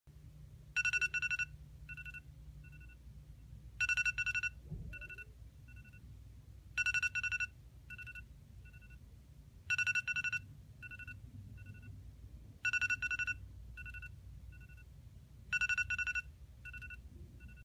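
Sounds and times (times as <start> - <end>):
iPhone ringtone: 0.8 - 3.0, 3.8 - 6.0, 6.8 - 9.0, 9.7 - 11.9, 12.6 - 14.9, 15.5 - 17.6.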